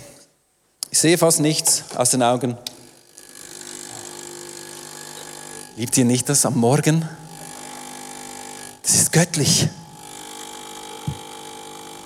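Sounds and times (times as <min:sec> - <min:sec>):
speech: 0:01.0 - 0:02.8, 0:05.8 - 0:07.2, 0:09.2 - 0:09.8
coffee machine running in a kitchen: 0:02.8 - 0:12.0.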